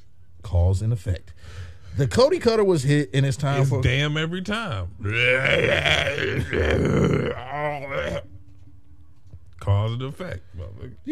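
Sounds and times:
speech: 0.5 - 8.3, 9.6 - 11.1
long rumbling burp after drinking beer: 5.0 - 8.2.

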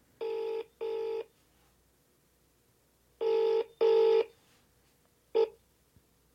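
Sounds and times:
telephone ringing through the line: 0.2 - 1.3, 3.2 - 4.4, 5.4 - 5.6.

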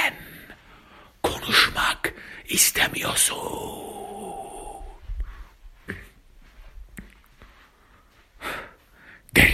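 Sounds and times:
heavy breathing: 0.1 - 1.2, 3.6 - 6.7, 7.4 - 9.4
speech: 2.5 - 3.9.

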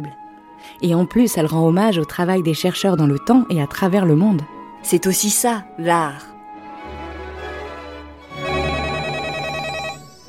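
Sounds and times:
speech: 0.0 - 6.3
telephone ringing with a rapid warbling trill in a museum: 8.3 - 10.2.

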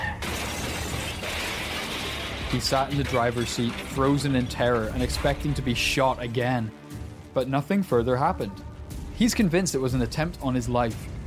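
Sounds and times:
car crash: 0.0 - 5.9
glass shattering in a car crash: 0.0 - 5.9
speech: 2.5 - 6.8, 7.4 - 8.6, 9.2 - 11.1.

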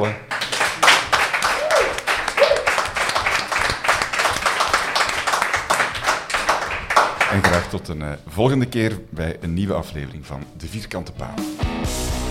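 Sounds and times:
speech: 0.0 - 0.3, 7.3 - 12.2
live audience applauding: 0.0 - 7.8
whoops and cheers: 1.4 - 2.8.

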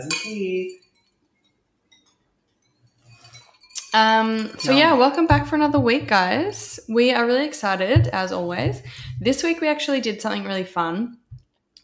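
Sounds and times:
speech: 0.0 - 0.8, 3.9 - 11.2
glasses clinking together in a toast: 0.0 - 5.5.

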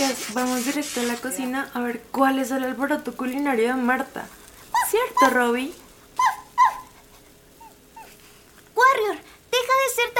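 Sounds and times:
speech: 0.0 - 6.3, 9.0 - 10.1
female pet dog whimpering: 6.2 - 8.2.

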